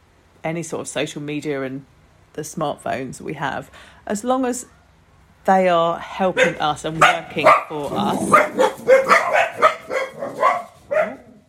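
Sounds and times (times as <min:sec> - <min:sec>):
speech: 0:00.4 - 0:04.8, 0:05.4 - 0:08.7
dogs barking: 0:06.3 - 0:11.4.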